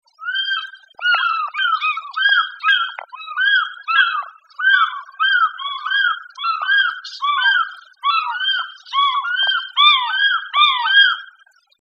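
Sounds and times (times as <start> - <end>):
two African fish eagles calling: 0.1 - 11.5.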